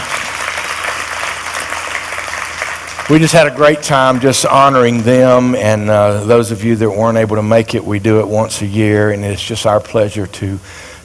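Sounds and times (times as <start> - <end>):
audience applause honoring volunteers at an appreciation event: 0.0 - 5.3
speech: 3.1 - 10.9.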